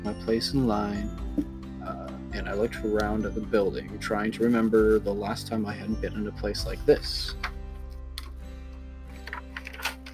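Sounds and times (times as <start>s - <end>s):
speech: 0.2s - 7.5s
paper being handled and a page flipped: 9.2s - 10.1s.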